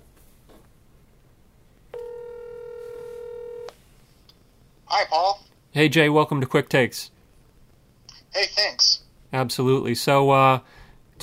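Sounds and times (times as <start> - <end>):
ringback tone from an outgoing phone call: 1.9 - 3.7
speech: 4.9 - 7.2, 8.4 - 11.2.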